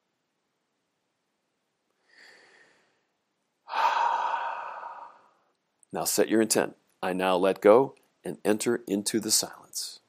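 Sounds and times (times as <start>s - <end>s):
deep cleansing breath in and out: 2.0s - 5.5s
speech: 5.9s - 10.0s.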